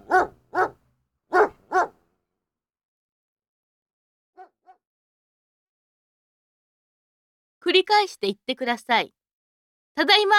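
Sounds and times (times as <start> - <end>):
dog barking: 0.0 - 2.0, 4.4 - 4.8
speech: 7.7 - 9.2, 10.0 - 10.3.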